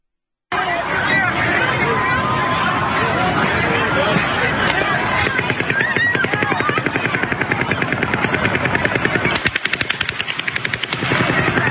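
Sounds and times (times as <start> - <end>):
continuous rumble: 0.5 - 11.6
crowd murmuring: 0.5 - 11.6
distant rapid gunfire: 5.2 - 11.6.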